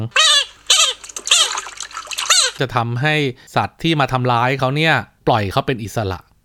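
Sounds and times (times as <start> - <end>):
speech: 0.0 - 0.2, 2.6 - 6.3
frog screaming loudly in shrill harsh wails: 0.0 - 2.6.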